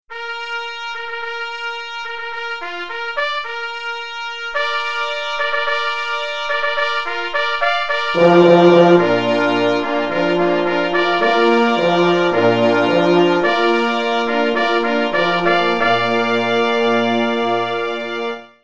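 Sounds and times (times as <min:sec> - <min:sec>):
fanfare: 0:04.6 - 0:18.6.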